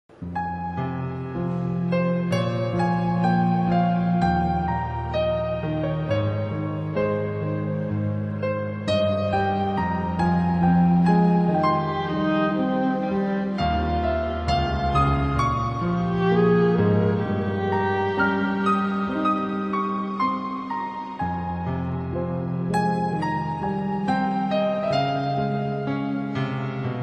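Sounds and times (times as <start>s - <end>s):
piano: 0.0s - 27.0s
violin: 0.2s - 27.0s.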